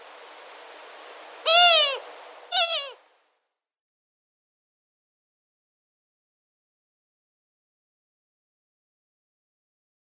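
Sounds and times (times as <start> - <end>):
female Long-eared Owl display call: 1.4 - 3.0.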